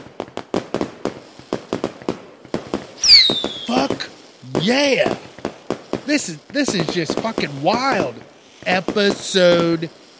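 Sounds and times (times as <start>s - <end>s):
fireworks crackling pops: 0.0s - 10.1s
shrill descending firework whistle: 3.0s - 4.1s
speech: 3.3s - 5.3s, 6.1s - 10.0s.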